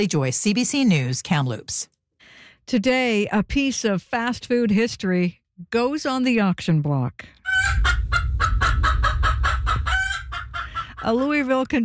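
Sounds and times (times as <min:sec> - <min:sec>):
speech: 0:00.0 - 0:02.0, 0:02.7 - 0:07.6, 0:11.0 - 0:11.8
chickens clucking: 0:07.5 - 0:11.4
low rumbling background: 0:07.6 - 0:11.2.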